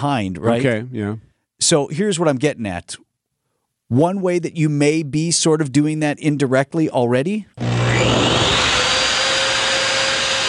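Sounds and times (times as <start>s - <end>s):
speech: 0.0s - 3.0s, 3.9s - 8.4s
electric hand dryer blowing air with a high whine: 7.6s - 10.4s.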